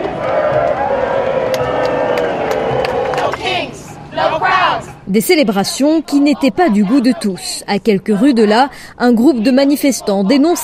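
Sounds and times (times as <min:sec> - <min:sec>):
people clapping: 0:00.0 - 0:05.0
people shouting: 0:00.0 - 0:07.6, 0:08.2 - 0:10.6
large crowd singing a song: 0:00.0 - 0:10.6
speech: 0:05.1 - 0:10.6.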